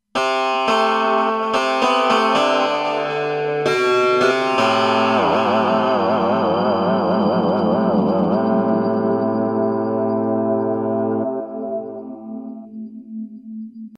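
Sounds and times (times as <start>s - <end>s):
electric guitar: 0.2s - 12.7s.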